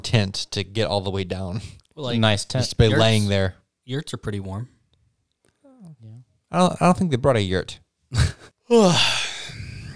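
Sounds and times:
speech: 0.0 - 4.8, 5.8 - 9.6
long yawn with breathy exhale: 8.7 - 9.9.

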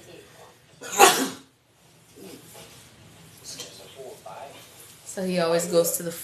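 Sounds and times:
person sneezing: 0.9 - 1.5
speech: 5.2 - 6.2.

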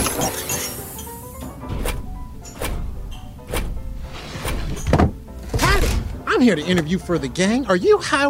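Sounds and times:
wooden saloon doors swinging open and flapping: 1.2 - 7.3
speech: 6.4 - 8.2.

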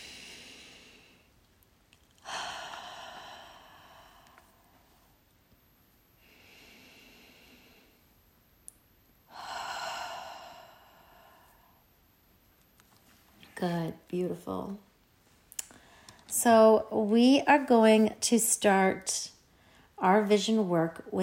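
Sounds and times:
slow deep breathing in a guided breathing exercise: 0.0 - 1.4, 2.2 - 5.1, 6.2 - 8.2, 9.3 - 11.9, 15.6 - 16.3
speech: 13.6 - 14.9, 16.4 - 19.4, 20.0 - 21.2.

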